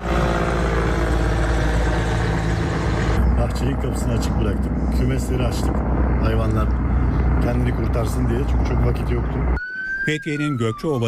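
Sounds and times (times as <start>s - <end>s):
firefighting helicopters and planes flying over a forest fire in Muğla: 0.0s - 9.6s
speech: 3.6s - 11.0s.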